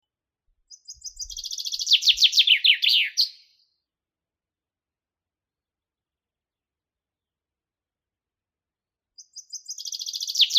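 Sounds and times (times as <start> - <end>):
Common chaffinch Fringilla coelebs singing: 0.0 - 3.9, 9.1 - 10.5.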